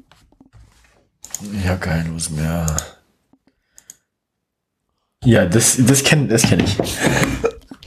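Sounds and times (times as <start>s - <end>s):
computer mouse clicking: 1.2s - 1.5s, 2.6s - 4.1s
speech: 1.4s - 3.0s, 5.2s - 7.5s.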